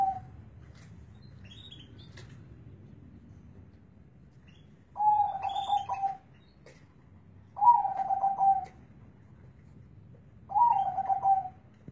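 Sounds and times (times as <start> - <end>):
local zebra dove cooing: 0.0 - 0.3, 5.0 - 6.2, 7.6 - 8.8, 10.5 - 11.6.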